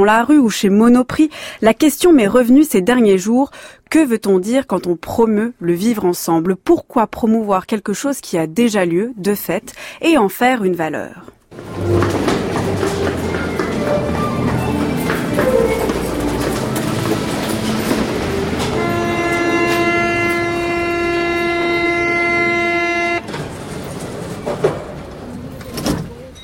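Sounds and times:
speech: 0.0s - 12.0s
metro train rumbling along rails: 11.5s - 26.4s
sustained tonal whine or horn: 15.0s - 23.4s.

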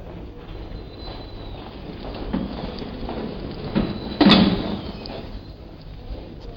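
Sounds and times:
metro station murmur: 0.0s - 6.5s
soft knocks: 0.1s - 5.4s
metro station entrance doors swinging and banging shut: 0.5s - 5.5s.

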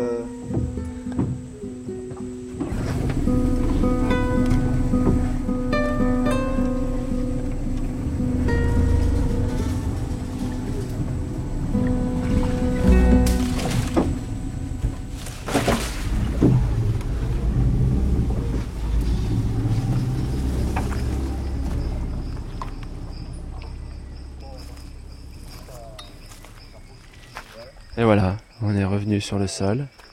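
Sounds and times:
boat motor running on water: 0.0s - 27.5s
speech: 29.2s - 30.0s.

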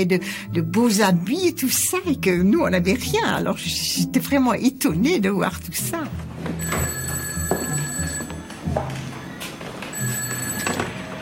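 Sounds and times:
speech: 0.0s - 6.8s
telephone ringing in electronic bursts: 6.4s - 11.2s.

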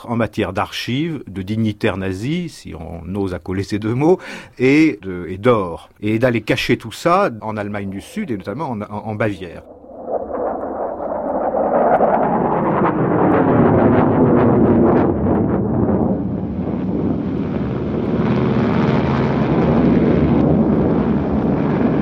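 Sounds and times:
speech: 0.0s - 9.8s
rushing wind noise: 7.5s - 22.0s
Junkers propeller plane engine roaring as it powers up for takeoff: 9.7s - 22.0s.

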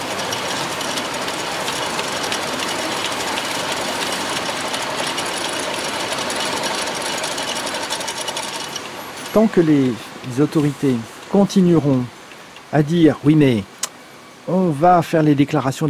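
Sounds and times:
two identical tube-making production machines clattering: 0.0s - 10.6s
speech: 9.4s - 13.7s, 14.5s - 15.8s.

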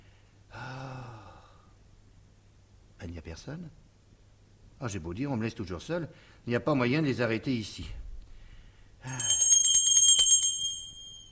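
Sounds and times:
speech: 3.2s - 3.9s, 4.8s - 8.0s, 9.0s - 9.3s
small hand bell shaken to call for servants: 9.1s - 11.2s.

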